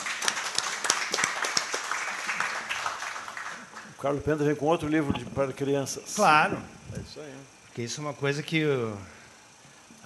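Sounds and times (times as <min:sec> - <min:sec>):
applause from a small group: 0:00.0 - 0:04.0
speech: 0:04.0 - 0:09.2.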